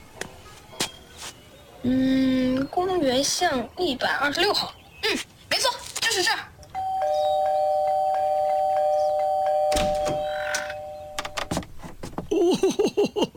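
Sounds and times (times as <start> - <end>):
speech: 1.8 - 5.3
electric doorbell buzzing in a long steady ring: 6.8 - 11.5
laughter: 12.3 - 13.3.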